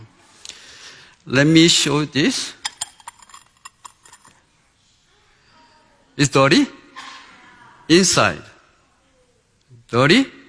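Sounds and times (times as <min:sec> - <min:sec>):
speech: 0:01.2 - 0:02.6, 0:06.2 - 0:06.8, 0:07.9 - 0:08.5, 0:09.9 - 0:10.4
bowl being handled: 0:02.6 - 0:04.4
dishes clinking: 0:02.6 - 0:04.4.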